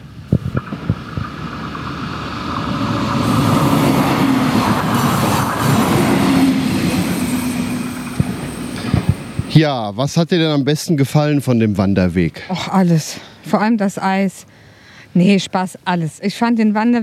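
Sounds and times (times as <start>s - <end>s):
train rumbling past on the rails at a level crossing: 0.0s - 9.6s
speech: 9.6s - 17.0s.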